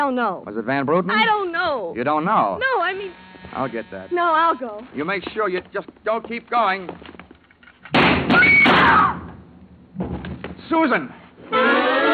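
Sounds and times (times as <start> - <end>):
speech: 0.0 - 7.1, 8.4 - 9.2, 10.0 - 12.0
cracks and thuds near a door: 5.2 - 10.7
gunshot fired through a door: 7.9 - 9.3.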